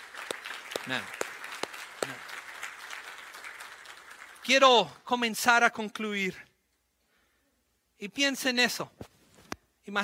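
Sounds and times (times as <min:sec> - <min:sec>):
sharp individual claps: 0:00.0 - 0:04.5
congregation applauding: 0:00.0 - 0:05.0
speech: 0:00.9 - 0:01.2, 0:04.5 - 0:06.5, 0:08.0 - 0:09.0, 0:09.8 - 0:10.0.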